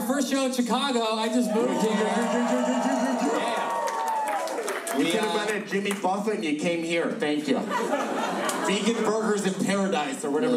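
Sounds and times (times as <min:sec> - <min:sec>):
speech: 0:00.2 - 0:03.8, 0:04.9 - 0:10.5
big live audience cheering and whooping at a show in Chicago: 0:01.2 - 0:05.6
laughter: 0:01.5 - 0:03.9, 0:07.5 - 0:10.5.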